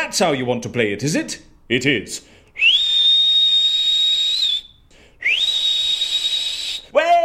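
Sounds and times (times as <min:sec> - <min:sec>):
speech: 0:00.0 - 0:02.8
person whistling a long steady high note: 0:02.6 - 0:06.9.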